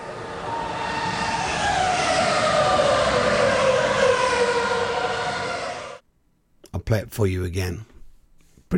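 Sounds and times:
Formula One racing car roaring past: 0.0s - 6.0s
speech: 6.9s - 7.9s.

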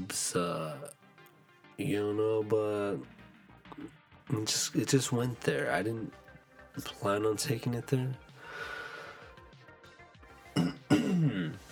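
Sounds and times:
speech: 0.1s - 1.0s, 1.8s - 6.2s, 6.8s - 8.7s
throat clearing: 10.6s - 11.6s.

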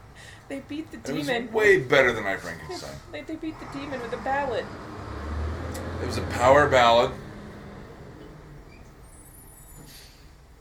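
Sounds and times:
speech: 0.5s - 5.0s, 6.0s - 7.2s
heavy dump truck engine idling: 2.8s - 10.5s
faint high whines: 5.8s - 10.3s
dump truck air brakes hissing: 7.6s - 10.5s.

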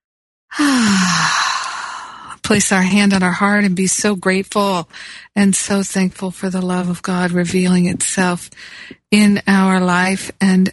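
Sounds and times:
deep breath taken in during a guided breathing exercise: 0.5s - 2.4s
speech: 2.5s - 10.7s.

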